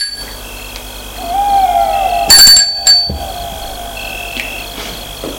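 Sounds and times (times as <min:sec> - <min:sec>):
faint hooting tone: 0:01.1 - 0:05.3
doorbell ringing at the entrance of a château: 0:02.2 - 0:04.3.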